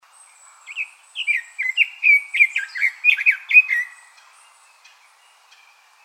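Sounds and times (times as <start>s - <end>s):
red-billed leiothrix singing warbled phrase: 0.6s - 4.1s.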